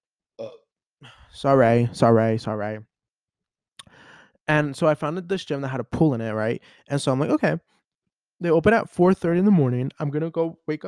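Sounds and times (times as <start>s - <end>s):
burp: 0.4s - 0.7s
speech: 0.4s - 2.9s, 4.5s - 7.7s, 8.4s - 10.8s.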